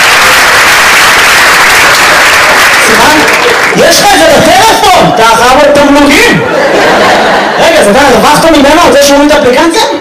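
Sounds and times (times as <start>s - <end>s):
crowd applauding with dense steady clapping: 0.0s - 4.5s
speech: 5.2s - 7.0s, 7.8s - 9.9s
laughter: 6.3s - 8.1s.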